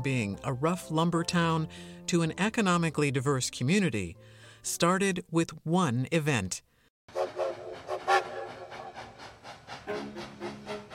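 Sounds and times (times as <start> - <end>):
speech: 0.0 - 6.7
Wisconsin Central Railroad train horn: 7.1 - 8.9, 9.9 - 10.9
Wisconsin Central Railroad train rolling by in Stevens Point: 7.1 - 10.9.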